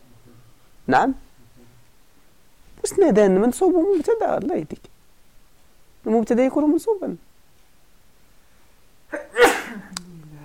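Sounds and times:
speech: 0.9 - 1.2, 2.9 - 4.9, 6.0 - 7.3
person sneezing: 9.1 - 10.0.

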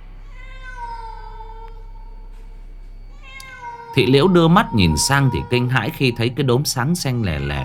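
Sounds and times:
low hum: 0.0 - 7.6
black cat meowing at night: 0.2 - 2.1, 3.1 - 7.6
speech: 3.9 - 7.6.

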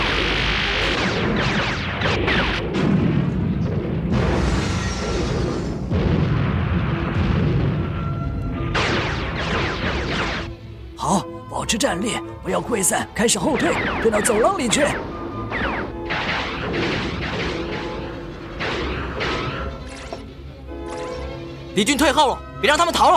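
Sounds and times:
battle gunfire in a science-fiction war scene: 0.0 - 10.6, 13.5 - 20.3
explosions in a science-fiction war scene: 0.0 - 10.6, 13.5 - 20.0
speech: 11.7 - 15.1, 21.8 - 23.1.

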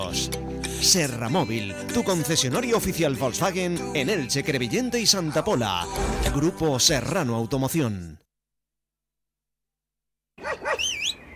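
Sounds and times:
speech: 0.1 - 8.2
dog giving short high-pitched yelping barks: 10.4 - 11.3.

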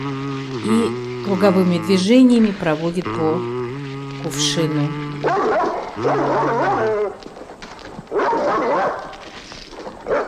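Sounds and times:
speech: 0.0 - 3.6, 4.2 - 5.4, 6.0 - 7.3
dog barking: 5.2 - 7.2, 8.1 - 9.2, 10.1 - 10.2.

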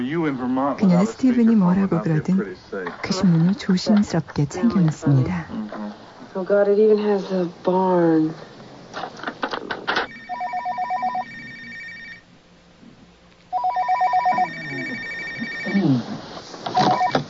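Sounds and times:
speech: 0.0 - 5.6, 6.4 - 8.5
telephone with trilling electronic ringing: 10.0 - 12.3, 13.5 - 15.9, 16.7 - 17.2.

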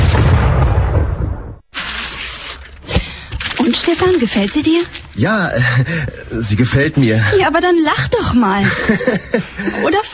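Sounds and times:
fireworks exploding with deep rumbling boom: 0.0 - 1.8
speech: 3.8 - 10.1
laughter: 5.4 - 6.5, 8.6 - 10.1.

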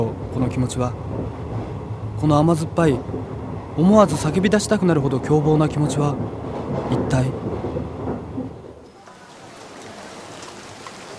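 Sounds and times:
speech: 0.0 - 1.4, 2.2 - 7.5
steady rain falling outside railway station ticket gates: 8.8 - 11.1.

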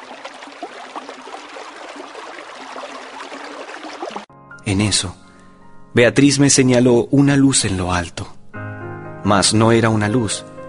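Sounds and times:
stream murmuring: 0.0 - 4.3
speech: 4.7 - 5.2, 6.0 - 8.4, 9.2 - 10.5.

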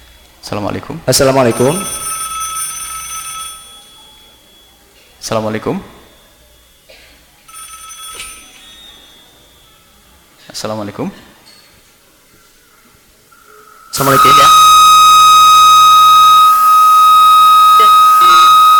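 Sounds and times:
speech: 0.4 - 2.0, 5.3 - 6.0, 10.6 - 11.3, 14.0 - 14.7
telephone ringing with an incoming call: 1.2 - 10.2, 13.4 - 18.7.

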